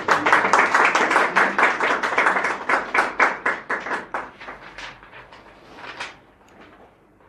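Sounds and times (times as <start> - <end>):
audience clapping: 0.0 - 5.1.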